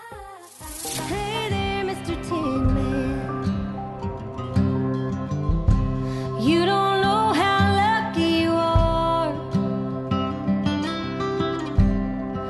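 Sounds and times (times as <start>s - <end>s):
woman singing a slow tender melody: 0.0s - 3.8s, 6.3s - 9.6s
soft acoustic accompaniment of a gentle country song: 0.0s - 12.4s.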